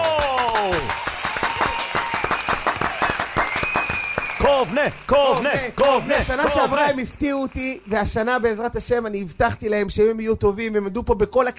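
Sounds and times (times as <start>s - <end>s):
people shouting and cheering: 0.0s - 8.3s
crowd applauding at a competition: 0.0s - 9.3s
sliding whistle-like cry: 3.4s - 4.5s
speech: 4.7s - 11.5s.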